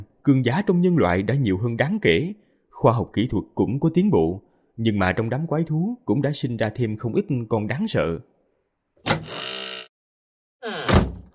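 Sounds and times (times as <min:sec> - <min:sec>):
speech: 0:00.2 - 0:08.3
house door opening with a click and a grinding creak: 0:09.0 - 0:09.9, 0:10.6 - 0:11.3.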